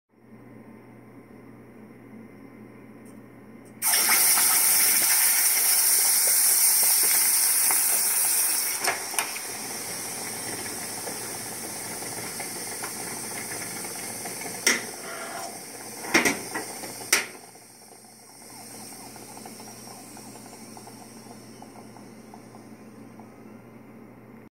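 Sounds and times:
hot iron in water: 3.8s - 22.7s.

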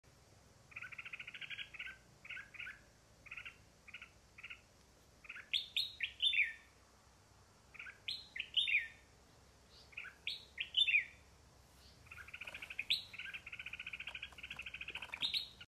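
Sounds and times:
female common nightingale calling to attract a mate: 0.6s - 6.8s, 7.7s - 15.6s.

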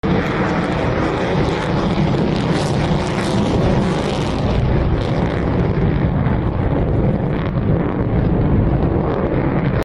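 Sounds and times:
Chengdu J-20 Chinese fighter jet: 0.0s - 9.8s.

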